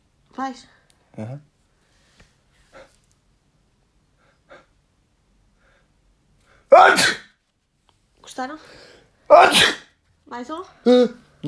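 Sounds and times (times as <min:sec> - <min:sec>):
speech: 0:00.4 - 0:01.5, 0:08.4 - 0:11.4
sneeze: 0:06.7 - 0:07.4, 0:09.3 - 0:10.0.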